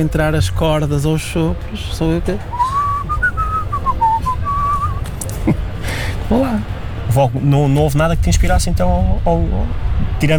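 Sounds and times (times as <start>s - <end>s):
speech: 0.0s - 2.8s, 6.3s - 10.3s
low rumbling background: 0.0s - 10.3s
person whistling a short wavering melody: 2.5s - 5.0s.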